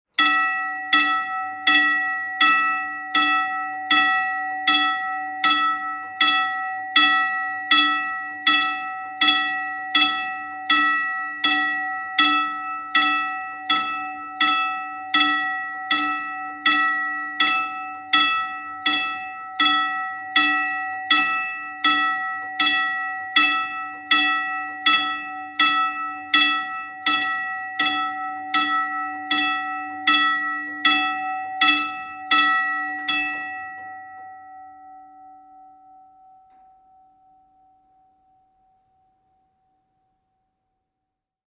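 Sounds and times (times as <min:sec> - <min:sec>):
train crossing bell: 0:00.2 - 0:38.9.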